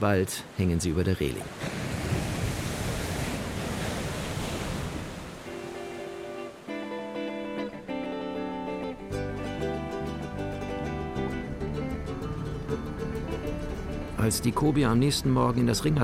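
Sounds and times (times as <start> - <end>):
speech: 0.0 - 1.8, 14.3 - 16.0
rough sea waves crashing: 0.0 - 16.0
loud gusty wind over rough sea: 1.4 - 6.8
instrumental music with sustained tones: 5.5 - 16.0.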